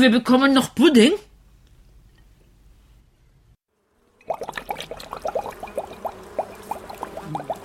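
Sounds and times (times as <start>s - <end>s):
speech: 0.0s - 1.3s
bubbly glugs and gurgles of poured liquid: 4.2s - 7.6s
greenish liquid poured into a sprayer bottle by a beekeeper: 4.2s - 7.6s
soft splashing wash of liquid: 4.2s - 7.6s.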